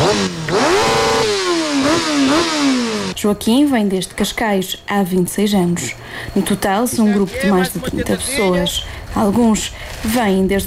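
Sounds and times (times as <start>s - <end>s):
motorcycle engine revving in throttle bursts: 0.0s - 3.2s
speech: 3.2s - 10.6s.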